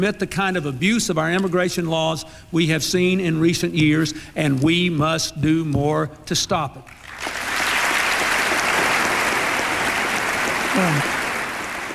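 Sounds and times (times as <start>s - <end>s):
speech: 0.0s - 7.4s, 10.8s - 11.2s
sustained applause from a large audience: 7.0s - 11.9s.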